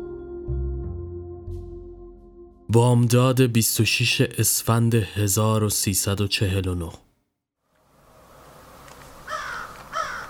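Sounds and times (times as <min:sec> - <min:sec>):
speech: 0:02.7 - 0:07.1
crows cawing: 0:09.2 - 0:10.2.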